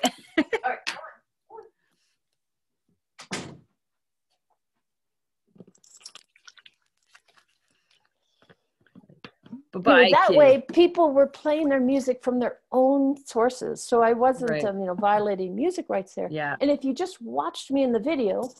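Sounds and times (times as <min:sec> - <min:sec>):
door thudding shut: 0:03.2 - 0:03.7
speech: 0:09.8 - 0:18.5.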